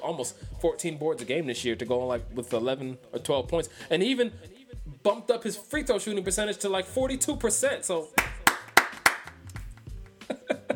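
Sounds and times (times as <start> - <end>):
speech: 0.0 - 8.4
applause as sharp hand claps: 8.2 - 10.4
laughter: 10.2 - 10.7.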